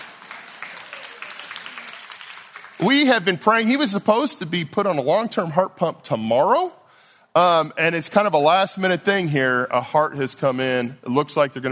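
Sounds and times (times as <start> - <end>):
audience applauding: 0.0 - 3.8
speech: 2.8 - 6.8, 7.4 - 11.6.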